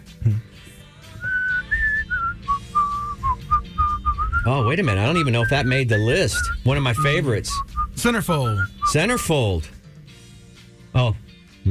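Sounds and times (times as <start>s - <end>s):
person whistling a melody: 1.1s - 9.3s
speech: 4.4s - 9.8s, 11.0s - 11.6s.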